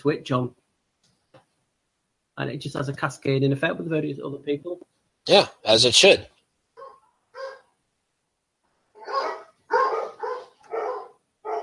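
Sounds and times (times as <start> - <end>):
speech: 0.0 - 0.6, 2.4 - 6.3
dogs barking: 6.8 - 7.6, 9.0 - 11.6.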